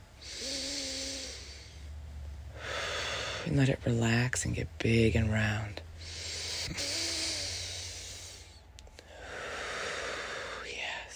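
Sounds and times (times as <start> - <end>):
deep belly breathing during a tai chi exercise: 0.1 - 3.6, 5.9 - 11.1
speech: 3.5 - 5.8, 6.7 - 6.9.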